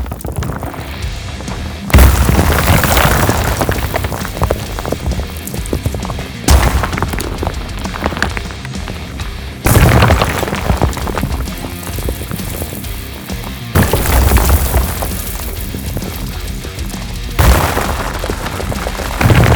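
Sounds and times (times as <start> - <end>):
destruction rock music: 0.4 - 2.6, 3.4 - 19.4.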